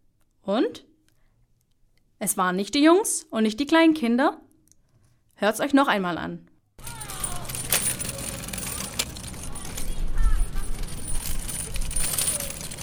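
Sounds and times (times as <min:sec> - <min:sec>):
speech: 0:00.5 - 0:00.9, 0:02.2 - 0:04.5, 0:05.4 - 0:06.5
kick scooter being ridden, wheels rolling: 0:06.8 - 0:12.8
sharp clicks and light rattles of a kick scooter: 0:06.8 - 0:12.8.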